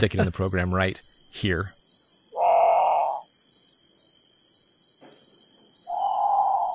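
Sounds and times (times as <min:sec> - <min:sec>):
speech: 0:00.0 - 0:01.8
night insects humming: 0:00.0 - 0:06.7
great potoo harsh growling calls: 0:02.3 - 0:03.3, 0:05.8 - 0:06.7.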